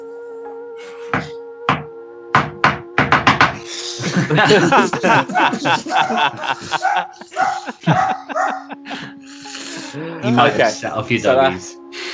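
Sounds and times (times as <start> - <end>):
rhythmic knocking pattern: 1.2 - 9.0
people laughing: 3.6 - 11.0
speech: 4.2 - 9.1, 9.9 - 11.8.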